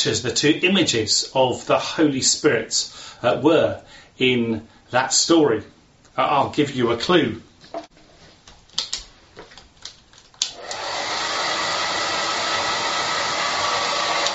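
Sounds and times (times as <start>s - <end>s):
speech: 0.0s - 7.8s
clicks and faint handling sounds: 7.6s - 10.8s
hair dryer blowing: 10.5s - 14.3s.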